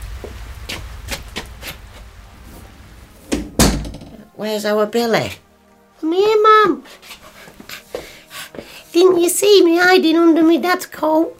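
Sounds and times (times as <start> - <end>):
low steady rumble: 0.0 - 4.4
light wooden knocks and rattles of a door being handled: 3.3 - 4.2
speech: 4.4 - 5.4, 6.0 - 7.1, 9.0 - 11.3.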